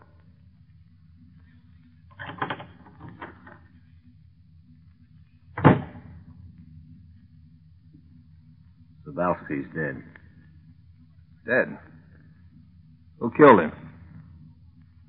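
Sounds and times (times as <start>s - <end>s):
door hinges creaking: 2.1s - 3.7s
heavy booming door thud: 5.5s - 6.2s
speech: 9.2s - 10.2s, 11.5s - 11.9s, 13.2s - 13.8s.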